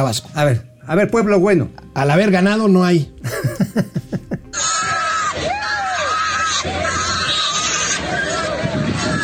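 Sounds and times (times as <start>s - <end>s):
speech: 0.0s - 4.0s
laughter: 3.2s - 4.7s
pigs squealing at a crashed livestock trailer in Tabasco Mexico: 4.5s - 9.2s
harsh noisy din: 4.6s - 9.2s.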